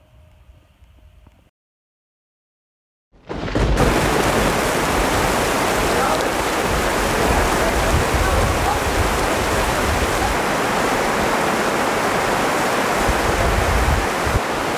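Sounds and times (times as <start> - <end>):
heavy rain storm on a tent: 3.3 - 14.7.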